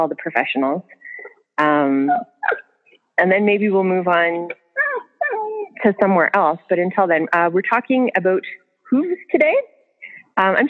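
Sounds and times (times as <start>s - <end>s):
speech: 0.0s - 1.0s, 1.6s - 2.6s, 3.2s - 4.6s, 5.8s - 9.7s, 10.4s - 10.6s
dog whimpering and yipping: 4.9s - 5.8s.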